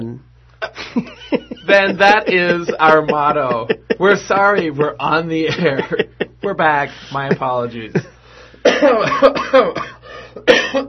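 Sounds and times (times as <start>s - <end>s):
laughter: 0.6s - 9.8s
speech: 1.0s - 10.8s
person coughing harshly: 8.6s - 10.8s.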